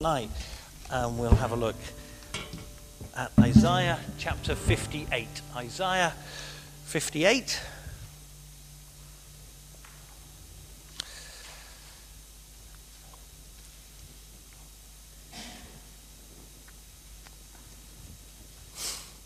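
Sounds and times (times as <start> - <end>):
speech: 0.0 - 7.8
faint steady hum: 0.0 - 19.2
congested nasal sniffs from a person with a head cold: 18.7 - 19.2.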